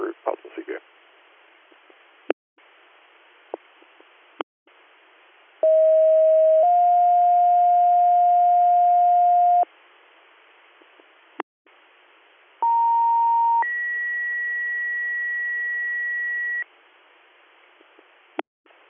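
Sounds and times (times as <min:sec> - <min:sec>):
two-tone fire dispatch paging alerts over radio: 0:05.6 - 0:09.6, 0:12.6 - 0:16.6.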